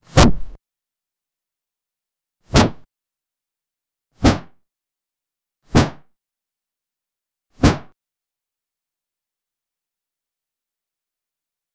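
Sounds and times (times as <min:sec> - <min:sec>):
intense muffled thud of a blunt weapon: 0:00.1 - 0:00.6.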